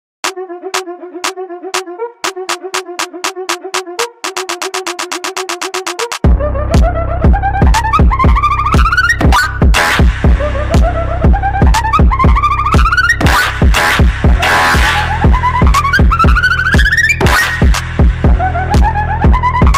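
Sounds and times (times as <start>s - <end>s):
dark evil beat: 0.2s - 19.7s.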